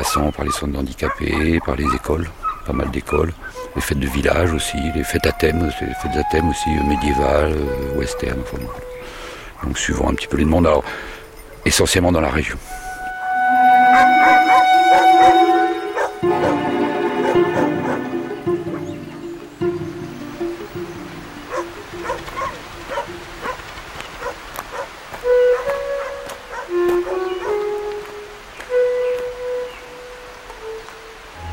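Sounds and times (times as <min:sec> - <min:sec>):
several aging dogs barking at a rural home: 0:00.0 - 0:04.2, 0:08.5 - 0:11.7, 0:13.9 - 0:19.6, 0:21.4 - 0:27.8
speech: 0:00.1 - 0:12.8
aging dogs yipping and whining at a rural home: 0:07.7 - 0:09.8, 0:13.0 - 0:19.6, 0:21.4 - 0:27.8.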